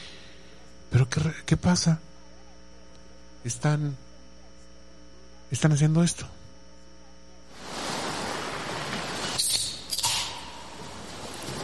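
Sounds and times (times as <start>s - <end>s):
speech: 0.9s - 2.1s, 3.4s - 4.0s, 5.5s - 6.4s
sea surf: 7.5s - 11.6s
sea waves breaking: 7.5s - 11.6s.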